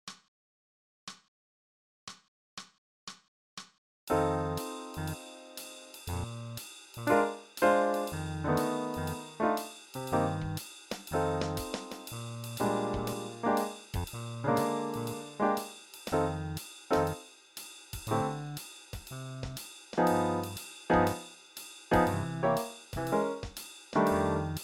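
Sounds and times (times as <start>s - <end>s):
blues bass: 4.1s - 5.2s, 6.1s - 7.2s, 8.1s - 9.4s, 10.0s - 15.4s, 16.1s - 17.2s, 18.1s - 21.2s, 21.9s - 23.3s, 24.0s - 24.6s.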